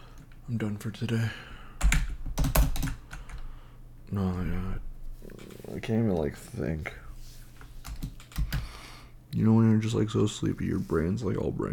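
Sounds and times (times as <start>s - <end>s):
speech: 0.5s - 1.5s, 4.1s - 7.0s, 9.3s - 11.7s
typing on a computer keyboard: 1.8s - 3.4s, 7.8s - 8.7s.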